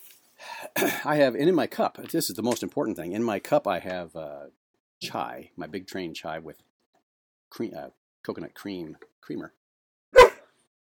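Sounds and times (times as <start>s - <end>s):
speech: 0.7s - 6.7s, 7.5s - 9.6s
dog barking: 10.1s - 10.5s.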